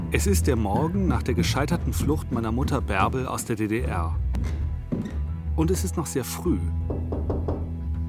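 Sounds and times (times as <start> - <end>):
speech: 0.1 - 6.9
firm knocking on a door: 4.3 - 5.3, 6.9 - 7.9.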